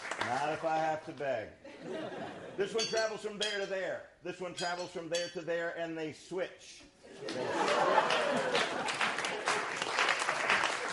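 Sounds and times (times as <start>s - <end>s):
speech: 0.6s - 9.8s
laughter: 1.6s - 2.6s, 7.1s - 9.9s
audience applause: 7.3s - 10.9s.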